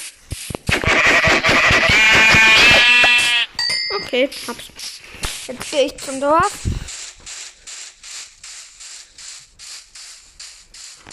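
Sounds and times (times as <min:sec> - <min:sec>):
sheep bleating in a long wavering cry: 0:00.8 - 0:03.6
speech: 0:04.1 - 0:04.9, 0:05.5 - 0:06.8.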